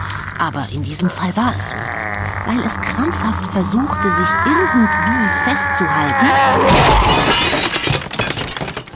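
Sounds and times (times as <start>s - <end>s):
speech: 0.4s - 7.7s
ceiling lamp crashing and shattering on floor: 6.7s - 8.9s.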